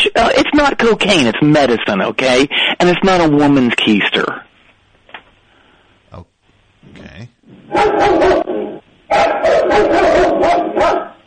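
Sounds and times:
speech: 0.2 - 4.5, 7.0 - 11.0
dog barking: 7.7 - 11.2.

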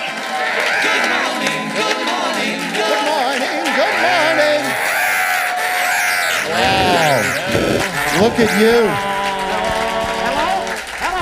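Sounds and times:
large live crowd cheering and screaming: 0.0 - 11.2
laughter: 0.0 - 11.2
speech: 8.2 - 9.1.

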